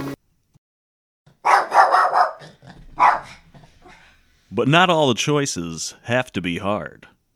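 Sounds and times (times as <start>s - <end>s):
female puppy yapping: 1.3s - 4.1s
speech: 4.5s - 7.1s.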